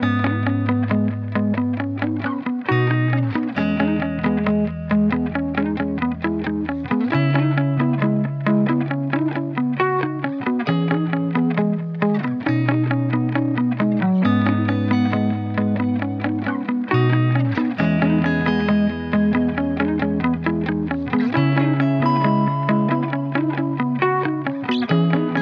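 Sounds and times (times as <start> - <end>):
guitar playing at 135 BPM in G sharp minor: 0.0 - 25.4.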